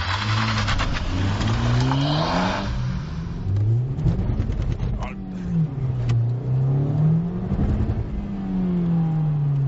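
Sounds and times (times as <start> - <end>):
Honda Civic Type R engine accelerating hard through gear shifts: 0.0 - 9.6.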